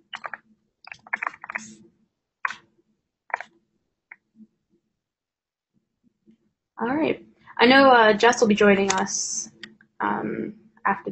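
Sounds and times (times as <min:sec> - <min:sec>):
typing on a keyboard: 0:00.1 - 0:01.7
speech: 0:01.6 - 0:02.0, 0:06.8 - 0:11.1.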